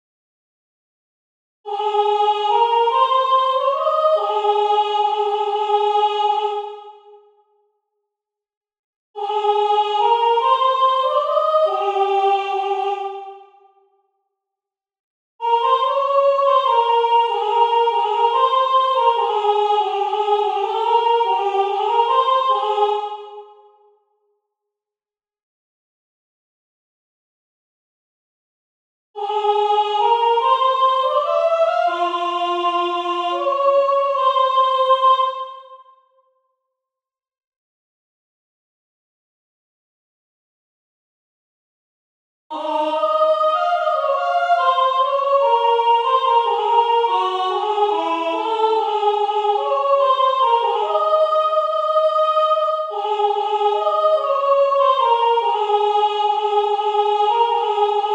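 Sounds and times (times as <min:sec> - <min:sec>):
soprano singing: 0:01.7 - 0:06.9, 0:09.2 - 0:13.4, 0:15.4 - 0:23.6, 0:29.2 - 0:35.7, 0:42.5 - 0:58.1.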